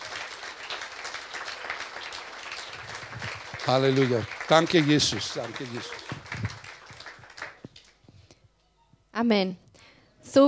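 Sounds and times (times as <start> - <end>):
audience applause: 0.0 - 8.0
speech: 3.7 - 6.1, 9.2 - 9.6, 10.3 - 10.4.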